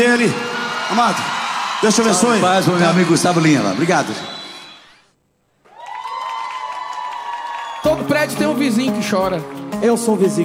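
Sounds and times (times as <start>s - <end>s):
speech: 0.0s - 4.4s, 7.8s - 10.4s
audience applause: 0.0s - 5.0s, 5.6s - 8.5s.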